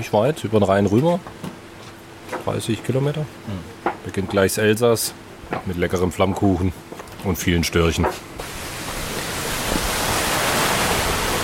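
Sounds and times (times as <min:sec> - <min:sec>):
speech: 0:00.0 - 0:01.5, 0:02.4 - 0:08.6
mountain stream splashing over stones: 0:08.4 - 0:11.4.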